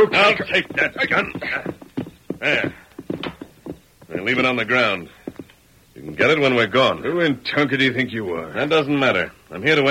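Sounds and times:
speech: 0.0s - 1.8s, 2.4s - 2.8s, 4.2s - 5.2s, 6.1s - 9.8s
horses' hooves clip-clopping: 0.0s - 5.6s.

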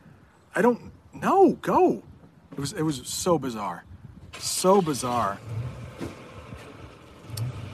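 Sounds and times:
speech: 0.6s - 5.6s
mail truck engine rumbling: 4.2s - 7.7s.

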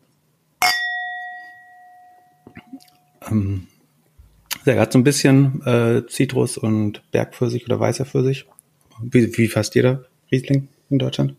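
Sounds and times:
wine glasses clinking in a toast: 0.6s - 2.8s
speech: 2.5s - 3.7s, 4.7s - 11.3s.

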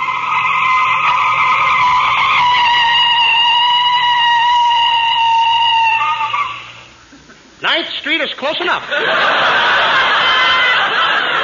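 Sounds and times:
car tires skidding on pavement with brakes squealing: 0.0s - 6.6s
speech: 8.4s - 9.5s
laughter: 8.8s - 11.4s.

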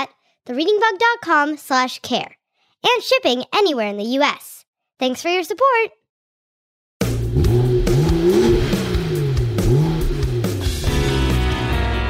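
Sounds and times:
speech: 0.0s - 6.0s
race car engine revving loudly: 7.0s - 11.9s.

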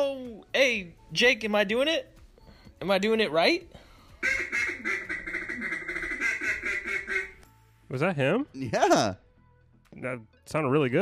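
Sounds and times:
speech: 0.6s - 2.2s, 2.8s - 4.7s, 7.9s - 9.2s, 9.9s - 10.9s
duck call blown in raspy quacks: 4.2s - 7.4s.

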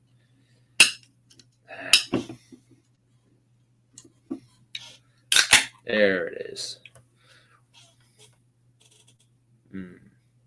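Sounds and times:
stout beer container being cracked open: 5.3s - 5.7s
speech: 5.9s - 6.8s.

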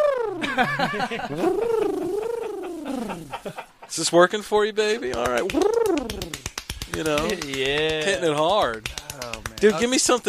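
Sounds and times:
man's voice imitating a cooing pigeon: 0.0s - 0.4s, 1.3s - 3.4s, 5.4s - 6.4s
laughter: 0.4s - 4.0s
speech: 0.6s - 1.9s, 2.9s - 9.0s, 9.6s - 10.2s.

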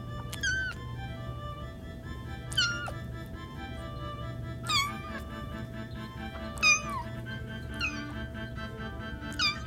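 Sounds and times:
low steady hum: 0.0s - 9.6s
small kitten meowing: 0.2s - 0.8s, 2.5s - 3.0s, 4.6s - 5.3s, 6.5s - 8.3s, 9.3s - 9.6s.

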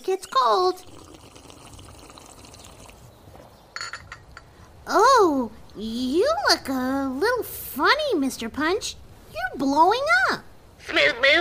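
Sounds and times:
tea pouring in a soft trickle: 0.0s - 3.1s
speech: 0.2s - 0.9s, 4.9s - 9.0s, 9.6s - 11.3s.

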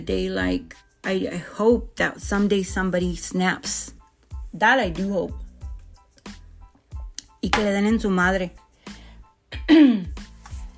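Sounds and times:
speech: 0.0s - 5.4s, 7.4s - 8.6s, 9.7s - 10.2s
throat clearing: 9.5s - 10.2s.

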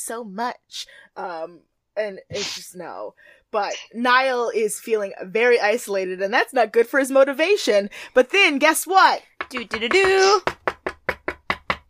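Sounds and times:
speech: 0.0s - 10.6s
knocking: 9.4s - 11.8s.

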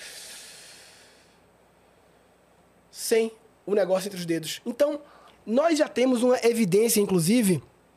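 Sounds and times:
deep breath imitating a smoker's drag: 0.0s - 2.4s, 5.0s - 5.4s
speech: 3.1s - 7.7s.

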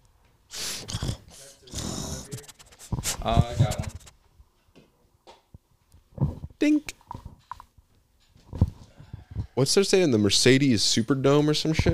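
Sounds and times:
person's voice imitating a dog sniffing with sharp breathy snorts: 0.5s - 4.1s
speech: 3.2s - 3.8s, 6.6s - 6.9s, 9.6s - 11.9s.

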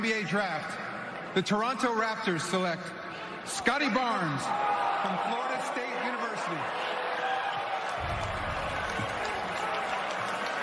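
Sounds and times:
speech: 0.0s - 7.0s
large crowd of fans roaring on draft night: 4.5s - 10.6s
scattered clapping: 7.5s - 10.6s.

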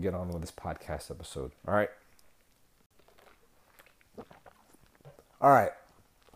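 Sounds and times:
speech: 0.0s - 2.0s, 5.4s - 5.8s
chewing ice cubes into the microphone: 2.2s - 6.3s.

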